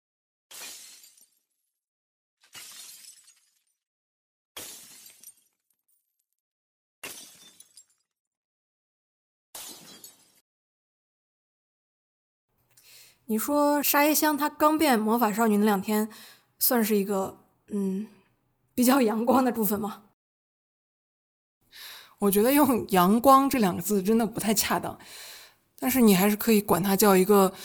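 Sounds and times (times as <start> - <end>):
glass artwork shattering: 2.5 - 3.5, 4.6 - 5.5, 7.0 - 8.0
tinkling glass shards: 4.6 - 5.5
speech: 13.3 - 18.2, 18.8 - 20.0, 22.2 - 27.6.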